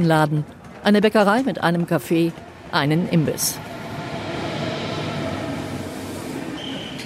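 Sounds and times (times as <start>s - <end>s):
speech: 0.0s - 3.7s
steady rumbling rail roar at a train station: 2.0s - 7.0s
brief high metallic squeal at a train station: 3.6s - 7.0s.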